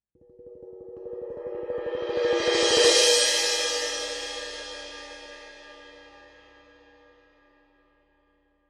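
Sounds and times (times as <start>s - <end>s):
18in orchestral suspended cymbal: 0.4s - 7.2s.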